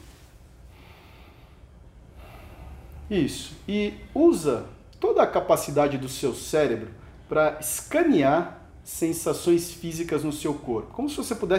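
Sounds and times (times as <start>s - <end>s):
deep breath drawn in slowly and let out: 0.6s - 3.1s
speech: 3.1s - 11.5s.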